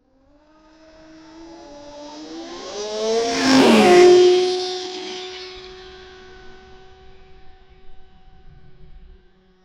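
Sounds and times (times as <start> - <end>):
futuristic electric scooter: 1.8 - 9.5.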